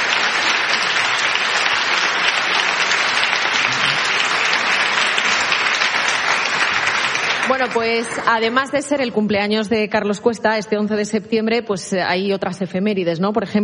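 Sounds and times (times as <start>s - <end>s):
studio audience applauding: 0.0s - 9.1s
speech: 7.6s - 13.6s.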